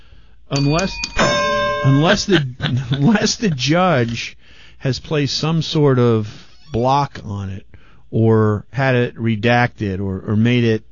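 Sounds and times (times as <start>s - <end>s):
bell sound effect chimes: 0.5s - 3.1s
speech: 0.5s - 10.8s
laughter: 2.0s - 4.3s.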